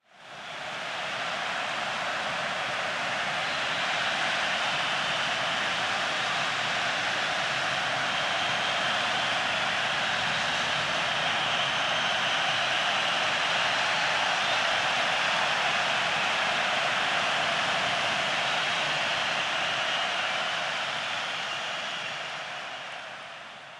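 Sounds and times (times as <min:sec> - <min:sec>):
very large sports stadium crowd tension: 0:00.1 - 0:23.7.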